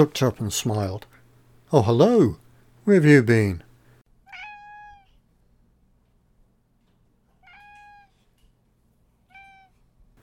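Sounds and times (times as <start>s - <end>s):
speech: 0.0s - 3.6s
faint low hum: 0.0s - 10.2s
cat yowling gently: 4.2s - 5.2s, 7.4s - 8.2s, 9.3s - 9.8s.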